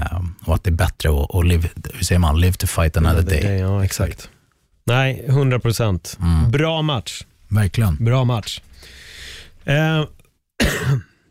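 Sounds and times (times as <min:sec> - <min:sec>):
speech: 0:00.5 - 0:09.0, 0:09.6 - 0:11.1
person coughing: 0:10.6 - 0:11.2.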